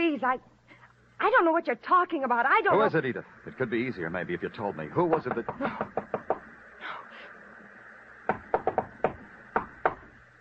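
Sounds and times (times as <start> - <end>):
speech: 0.2 - 0.6, 1.2 - 6.3
sharp knocks on a door: 5.1 - 6.4, 8.3 - 10.1.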